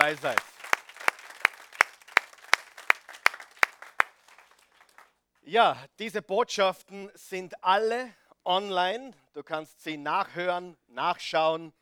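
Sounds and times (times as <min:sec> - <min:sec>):
audience clapping in unison: 0:00.0 - 0:05.1
speech: 0:00.1 - 0:00.5, 0:05.5 - 0:11.7.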